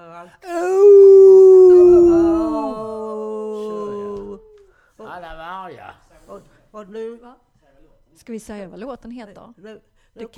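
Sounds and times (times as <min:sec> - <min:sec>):
speech: 0:00.2 - 0:00.6, 0:08.2 - 0:10.3
people howling like wolves for Walpurgis Night: 0:00.5 - 0:04.6.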